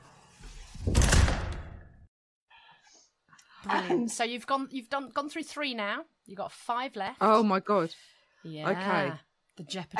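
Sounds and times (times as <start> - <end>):
door being pushed shut: 0.6 - 2.0
door thud: 0.8 - 2.0
speech: 3.7 - 9.9.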